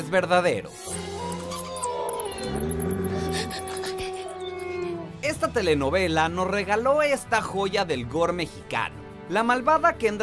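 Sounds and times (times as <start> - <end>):
speech: 0.1 - 1.1, 2.4 - 2.8, 5.3 - 10.2
wolves howling in a forest at night: 1.1 - 5.2.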